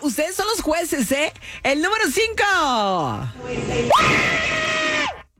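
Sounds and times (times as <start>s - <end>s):
speech: 0.2s - 4.7s
person screaming: 3.9s - 5.3s.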